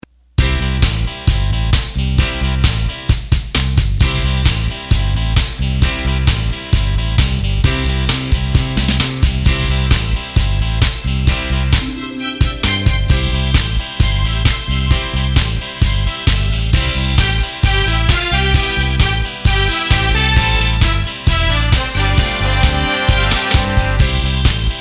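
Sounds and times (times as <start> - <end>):
disco rhythm on Roland BK7m keyboard: 0.4 - 24.8.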